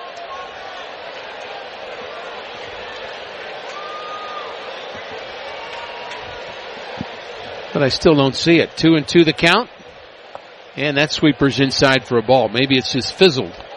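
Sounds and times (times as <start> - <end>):
big stadium crowd cheering for the wave: 0.0 - 13.7
speech: 7.8 - 9.7, 10.8 - 13.6.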